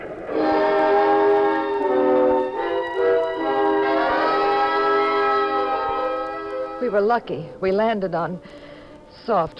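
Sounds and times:
loud train horn blaring a sustained chord: 0.3s - 6.9s
speech: 6.9s - 9.5s.

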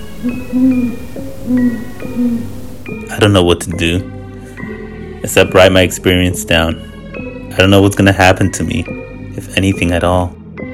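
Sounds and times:
owl hooting: 0.0s - 3.1s
speech: 0.2s - 6.9s, 7.6s - 10.4s.

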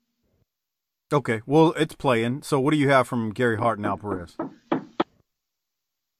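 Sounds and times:
speech: 1.1s - 4.6s
firm knocks on a door: 4.1s - 5.0s.

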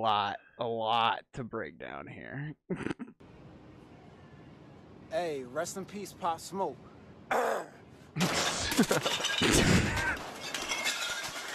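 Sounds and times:
speech: 0.0s - 3.4s, 5.1s - 10.1s
glass bottles smashing: 8.2s - 11.5s
noisy clatter: 8.2s - 11.5s
laughter: 8.6s - 9.0s.

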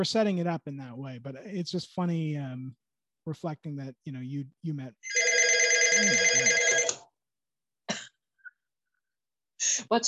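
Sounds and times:
speech: 0.0s - 5.2s, 6.0s - 6.7s, 9.7s - 10.0s
telephone ringing with a bright electronic tone: 5.0s - 7.0s.

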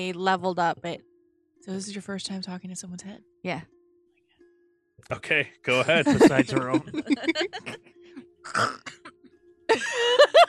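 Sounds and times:
speech: 0.0s - 3.8s, 5.0s - 7.8s, 8.5s - 9.0s, 9.7s - 10.4s
laughter: 5.7s - 7.8s, 9.7s - 10.4s
person coughing after inhaling a piece of carrot: 5.8s - 7.8s, 8.5s - 9.2s
throat clearing: 8.5s - 9.2s.

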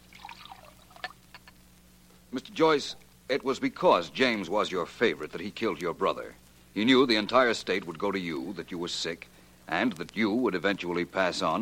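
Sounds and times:
water poured from a pitcher into a glass: 0.0s - 1.2s
speech: 2.3s - 11.6s.

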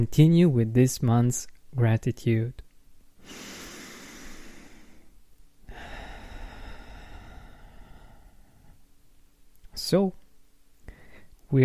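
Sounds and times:
speech: 0.0s - 2.6s, 3.2s - 3.5s, 9.8s - 10.2s
slow deep breath during a guided gratitude meditation: 3.2s - 8.8s, 10.8s - 11.4s.

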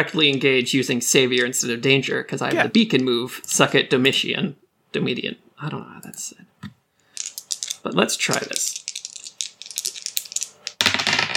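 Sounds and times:
speech: 0.0s - 6.7s, 7.8s - 8.8s
dice shaken and rolled across a surface in a tabletop role-playing game: 7.1s - 11.3s.

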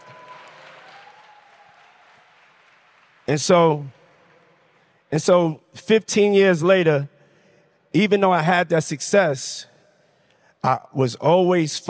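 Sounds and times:
audience clapping: 0.0s - 5.2s
speech: 3.3s - 4.0s, 5.1s - 7.1s, 7.9s - 9.7s, 10.6s - 11.8s.

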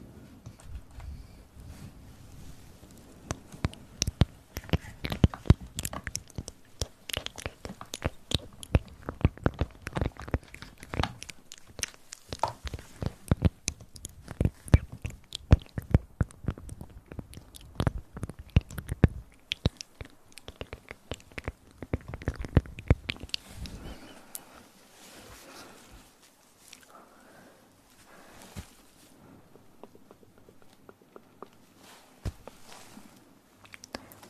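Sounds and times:
wet mouth clicks, smacks and pops: 3.2s - 24.4s, 29.5s - 31.6s, 33.6s - 34.2s.

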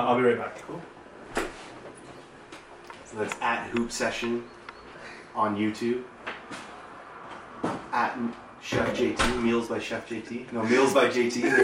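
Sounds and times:
speech: 0.0s - 1.0s, 3.1s - 4.6s, 5.3s - 6.6s, 7.9s - 11.6s
door closing with a soft thud: 8.7s - 9.5s
laughter: 10.6s - 11.6s.

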